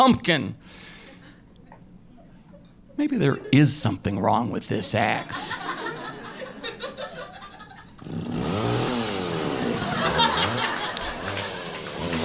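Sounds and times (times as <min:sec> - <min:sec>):
speech: 0:00.0 - 0:00.9, 0:03.0 - 0:06.0
laughter: 0:04.9 - 0:08.1, 0:09.4 - 0:12.2
chainsaw cutting through a tree trunk: 0:08.0 - 0:12.2.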